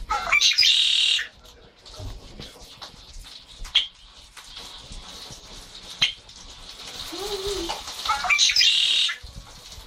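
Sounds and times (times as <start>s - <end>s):
chopi blackbird singing: 0.1s - 1.3s, 8.1s - 9.2s.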